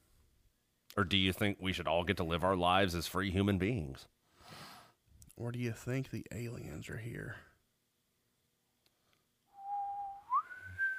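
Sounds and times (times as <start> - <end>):
speech: 1.0 - 4.2, 5.4 - 7.5
dry-mouthed breathy whistle: 9.5 - 10.9.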